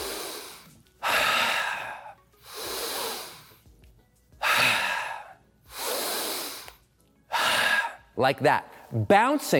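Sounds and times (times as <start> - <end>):
deep breathing while bouncing in place: 0.0 - 3.7, 4.4 - 8.1
speech: 8.2 - 9.5.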